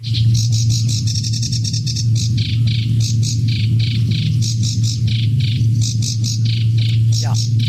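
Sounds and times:
sedge warbler singing rapid chattering notes and harsh trills: 0.0 - 7.6
steady low hum: 0.0 - 7.6.

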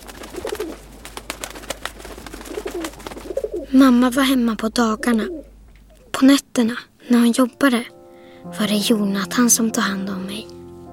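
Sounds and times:
pigeons cooing outside a window: 0.0 - 6.2
steady hiss: 0.0 - 10.9
speech: 3.7 - 5.4, 6.2 - 10.6.

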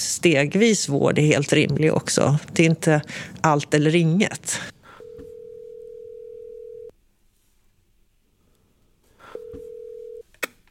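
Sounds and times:
speech: 0.2 - 4.8
telephone call ringing out: 4.9 - 6.9, 9.3 - 10.2.

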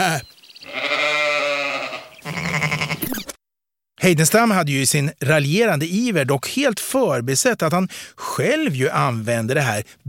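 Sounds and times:
speech: 0.0 - 0.8, 4.0 - 10.0
sheep bleating: 0.6 - 3.2.

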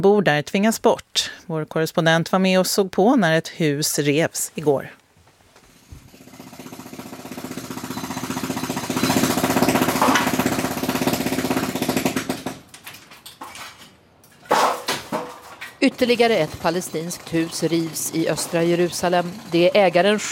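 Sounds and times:
speech: 0.0 - 5.0, 15.9 - 20.3
jackhammer demolishing roof: 5.9 - 12.7, 15.8 - 20.3.

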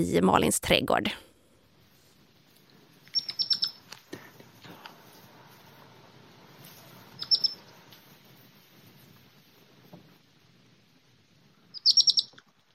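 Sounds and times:
speech: 0.0 - 1.3
faint rustling: 1.7 - 11.8
baby hedgehog chirping to its mother: 3.0 - 3.9, 7.1 - 7.7, 11.6 - 12.4.

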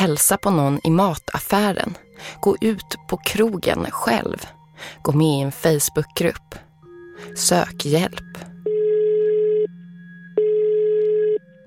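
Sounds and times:
speech: 0.0 - 8.8
telephone ringing tone beeps while a call connects: 8.6 - 9.8, 10.4 - 11.4.

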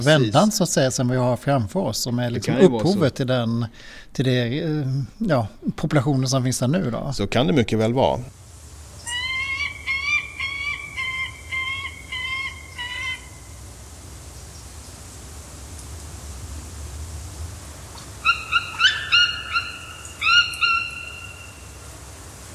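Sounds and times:
speech: 0.0 - 8.4
hiss: 0.0 - 22.5
white-tailed eagle giving high yelping calls: 9.0 - 13.6, 18.0 - 21.8.

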